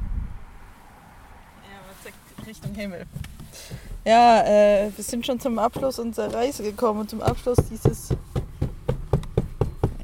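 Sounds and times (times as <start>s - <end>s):
speech: 2.0s - 8.3s
thumps: 2.2s - 10.0s.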